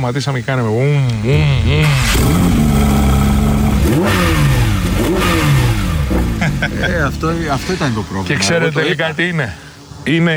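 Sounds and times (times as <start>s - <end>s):
speech: 0.0s - 3.2s, 3.9s - 5.6s, 6.6s - 10.3s
German-built car engine revving with metallic tone: 0.9s - 10.2s
laughter: 1.0s - 10.3s.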